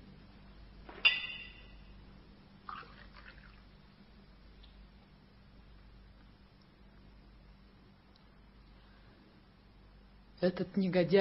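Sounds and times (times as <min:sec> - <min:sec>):
low hum: 0:00.0 - 0:11.1
glass clinking: 0:00.9 - 0:01.9
water poured into a glass: 0:02.7 - 0:03.6
speech: 0:10.4 - 0:11.1.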